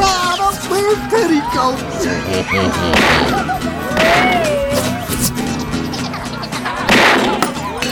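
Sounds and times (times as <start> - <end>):
laughter: 0.0 - 7.8
speech: 0.9 - 4.6
gunshots fired toward a ceiling: 2.9 - 3.4, 6.9 - 7.8.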